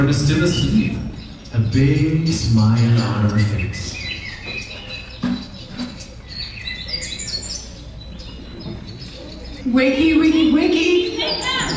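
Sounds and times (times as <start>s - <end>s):
speech: 0.0s - 4.0s, 9.7s - 11.5s
birds chirping and singing in the morning: 0.0s - 11.7s
soft outdoor ambience: 0.0s - 11.7s.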